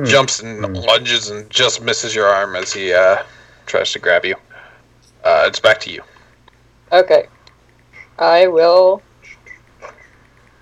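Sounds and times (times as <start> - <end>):
speech: 0.0 - 4.4, 5.2 - 6.1, 6.9 - 7.4, 8.2 - 9.1
dog making short high whining noises: 9.2 - 10.3.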